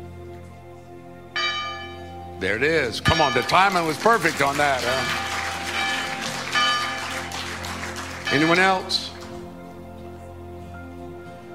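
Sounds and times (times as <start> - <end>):
bell ringing and struck: 1.4 - 2.1, 3.0 - 9.2
speech: 2.4 - 5.3, 8.3 - 9.1.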